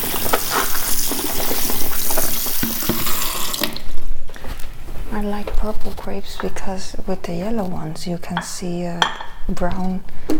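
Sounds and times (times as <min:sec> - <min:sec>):
tap water running into a sink while washing purple grapes: 0:00.0 - 0:03.9
speech: 0:05.2 - 0:10.3.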